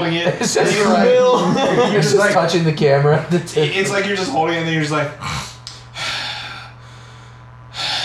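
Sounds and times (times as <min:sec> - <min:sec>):
laughter: 0:00.0 - 0:04.4
speech: 0:00.0 - 0:05.4
low steady hum: 0:00.0 - 0:08.0
heavy breathing into microphone: 0:05.2 - 0:08.0.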